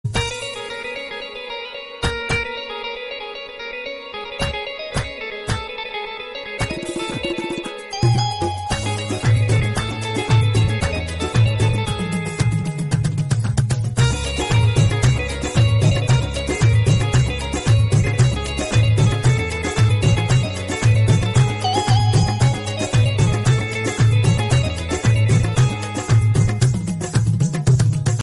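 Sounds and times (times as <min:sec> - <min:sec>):
instrumental background music ringtone: 0:00.2 - 0:28.2.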